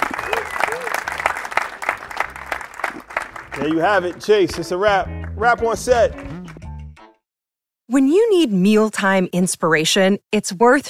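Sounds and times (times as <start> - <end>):
audience applauding and cheering: 0.0 - 6.6
speech: 3.6 - 6.4, 8.0 - 10.8.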